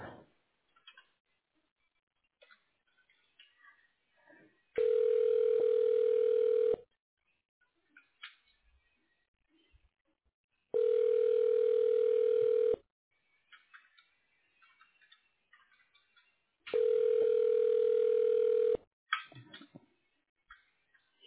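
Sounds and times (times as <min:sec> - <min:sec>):
telephone ringback tone while call is transferred to voicemail: 0:04.8 - 0:06.8, 0:10.8 - 0:12.8, 0:16.8 - 0:18.8.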